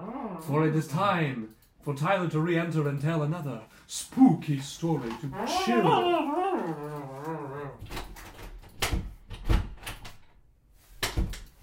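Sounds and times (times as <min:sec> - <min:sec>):
speech: 0:00.4 - 0:06.9
door creaking with a wavering groan: 0:05.0 - 0:10.2
door rattling and thumping as someone shoves at it: 0:07.8 - 0:10.4.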